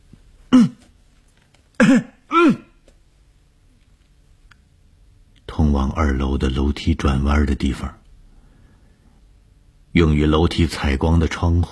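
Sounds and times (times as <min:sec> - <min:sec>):
man coughing loudly at a dormitory staircase: 0:00.5 - 0:00.9, 0:01.8 - 0:02.8
speech: 0:01.9 - 0:02.6, 0:06.0 - 0:08.0, 0:10.0 - 0:11.7.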